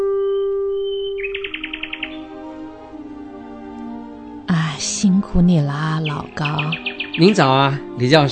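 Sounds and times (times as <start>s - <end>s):
small birds chirping in a tree: 0.2s - 2.9s, 4.5s - 8.3s
speech: 5.0s - 8.3s.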